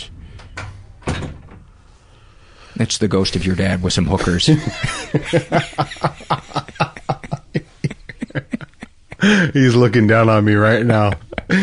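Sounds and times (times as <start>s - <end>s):
door latch clunk: 0.4s - 1.6s
speech: 2.8s - 6.9s, 9.2s - 11.6s
laughter: 4.0s - 11.6s.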